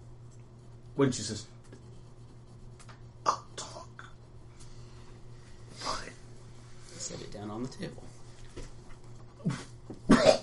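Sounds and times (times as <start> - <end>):
speech: 1.0 - 1.6, 7.6 - 8.1
voice acting a woman's wet gurgling cough: 9.5 - 10.4.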